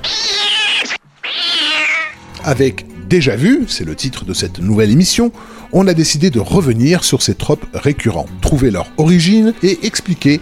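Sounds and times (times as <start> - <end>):
cat screeching: 0.0 - 2.2
speech: 2.4 - 10.4.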